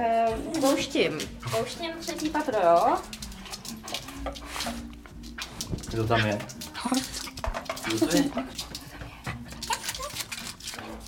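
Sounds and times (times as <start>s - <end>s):
speech: 0.0s - 4.8s, 5.9s - 7.1s, 7.9s - 8.6s
12-year-old dog whimpering: 6.2s - 8.6s, 9.3s - 11.0s.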